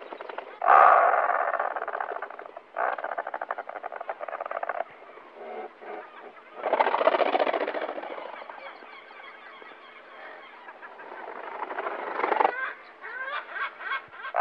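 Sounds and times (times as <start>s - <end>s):
razorbill making rattling growls: 0.0s - 4.9s, 5.8s - 8.7s, 11.1s - 12.8s.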